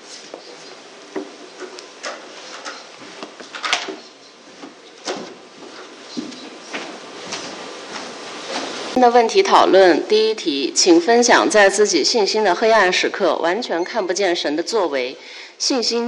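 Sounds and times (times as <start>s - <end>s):
chairs being rearranged, scraping and knocking: 0.0s - 9.0s
steady hum of activity: 0.0s - 16.0s
speech: 9.0s - 16.0s.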